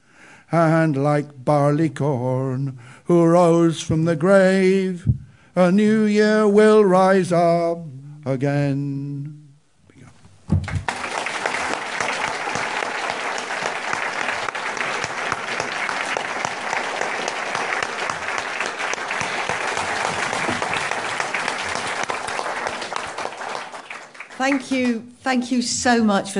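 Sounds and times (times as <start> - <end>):
speech: 0.5 - 9.4, 24.4 - 26.3
large audience applause: 10.6 - 25.0.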